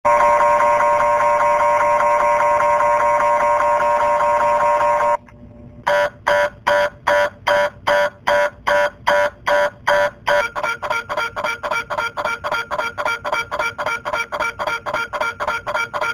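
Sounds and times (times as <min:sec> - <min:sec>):
MRI scanner noise: 0:00.1 - 0:05.2, 0:05.8 - 0:16.1.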